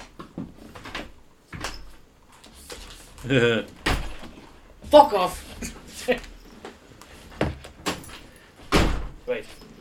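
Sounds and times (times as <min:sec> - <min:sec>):
speech: 0:03.2 - 0:03.8, 0:04.9 - 0:06.3
person talking and shouting: 0:04.8 - 0:05.4
stuck door pushed and knocked, thuds and rattles: 0:08.7 - 0:09.2.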